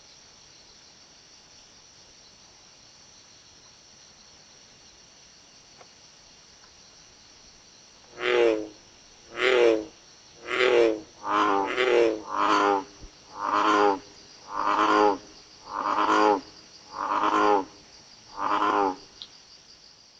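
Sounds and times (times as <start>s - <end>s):
American bullfrog Lithobates catesbeianus croaking: 8.1s - 19.3s.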